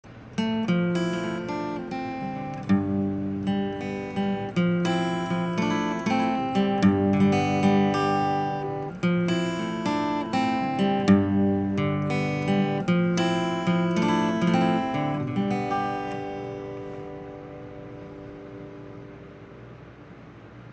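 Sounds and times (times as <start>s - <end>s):
guitar lines: 0.0s - 20.7s.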